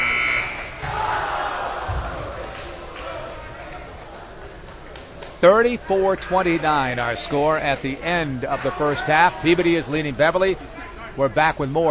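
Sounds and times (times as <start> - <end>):
basketball game buzzer ending the half: 0.0 - 0.8
arena crowd roaring and murmuring: 0.6 - 4.2, 5.8 - 10.3
speech: 5.4 - 11.8.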